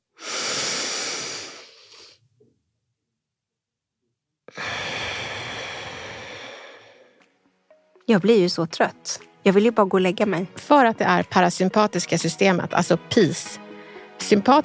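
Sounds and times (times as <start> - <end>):
slow breaths in through the nose: 0.1 - 2.3, 4.5 - 7.3, 13.7 - 14.2
speech: 8.1 - 13.6, 14.2 - 14.6.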